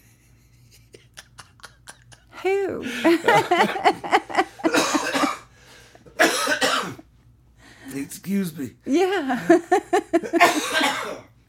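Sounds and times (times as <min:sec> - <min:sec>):
laughter: 0:00.6 - 0:05.1, 0:09.3 - 0:10.6
speech: 0:02.4 - 0:04.2, 0:08.1 - 0:10.5
person coughing: 0:04.6 - 0:05.5, 0:06.2 - 0:07.0, 0:10.2 - 0:11.3.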